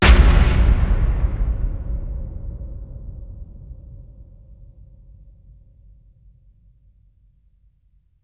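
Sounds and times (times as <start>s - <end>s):
low short cinematic impacts: 0.0s - 5.6s.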